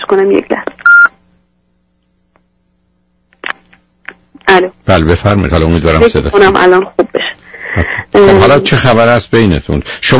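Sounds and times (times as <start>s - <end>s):
speech: 0.1s - 0.7s, 4.6s - 7.1s, 7.7s - 10.1s
electronic beeps on a telephone line: 0.8s - 1.2s.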